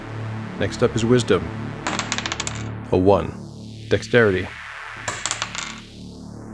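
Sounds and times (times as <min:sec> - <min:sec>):
speech: 0:00.6 - 0:01.8, 0:02.9 - 0:04.6
dice rolled across a hard table: 0:01.8 - 0:02.7, 0:05.0 - 0:05.9.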